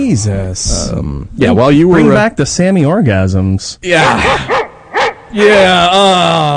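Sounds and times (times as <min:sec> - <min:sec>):
speech: 0:00.0 - 0:04.6, 0:05.3 - 0:06.5
single sharp dog bark: 0:04.0 - 0:05.3.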